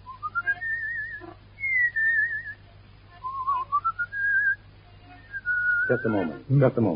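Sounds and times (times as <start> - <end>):
person whistling a slow wavering melody: 0.0 - 2.6, 3.2 - 4.6, 5.2 - 6.1
low steady hum: 0.0 - 6.9
speech: 5.9 - 6.9.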